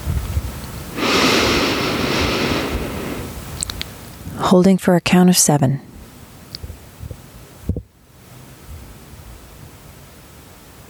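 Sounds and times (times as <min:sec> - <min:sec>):
slow inhale through the nose during 4-7-8 breathing: 0:00.9 - 0:03.6
speech: 0:04.5 - 0:05.9.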